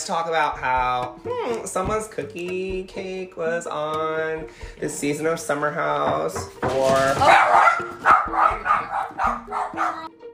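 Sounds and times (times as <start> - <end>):
speech: 0.0 - 10.1
excited dogs barking and yipping: 7.2 - 10.1.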